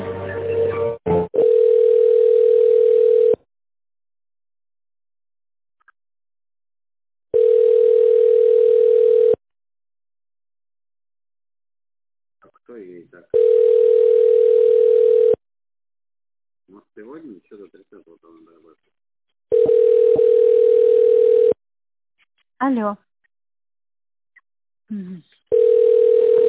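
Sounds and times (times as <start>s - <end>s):
telephone line tone while a call is put through: 1.4s - 3.4s, 7.3s - 9.4s, 13.4s - 15.4s, 19.5s - 21.6s, 25.5s - 26.4s.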